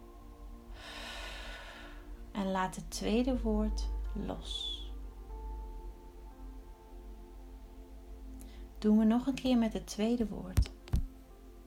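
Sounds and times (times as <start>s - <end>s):
person breathing out slowly during a meditation exercise: 0.7s - 2.2s
speech: 2.4s - 4.8s, 8.8s - 10.8s.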